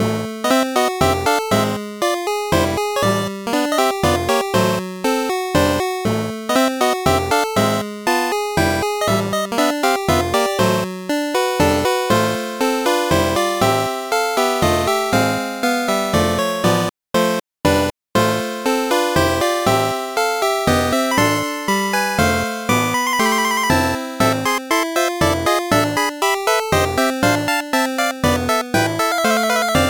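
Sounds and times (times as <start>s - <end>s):
8-bit chiptune: 0.4s - 5.8s, 6.5s - 29.8s.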